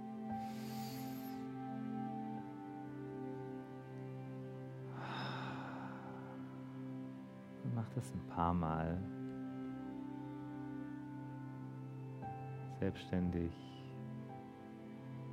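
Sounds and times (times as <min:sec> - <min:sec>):
steady droning tone: 0:00.0 - 0:15.3
deep inhaling during a guided breathing exercise: 0:00.3 - 0:01.4, 0:04.9 - 0:06.6
speech: 0:07.7 - 0:09.2, 0:12.8 - 0:13.7.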